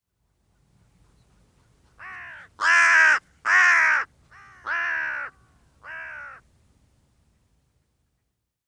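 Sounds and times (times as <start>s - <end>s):
bird giving harsh hoarse caws: 2.0s - 6.5s.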